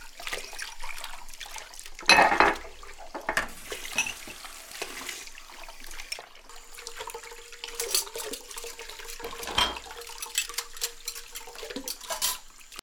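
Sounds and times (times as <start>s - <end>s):
running tap water splashing: 0.0s - 12.8s
dishes and cutlery clinking in a sink: 2.0s - 5.0s, 6.0s - 12.8s.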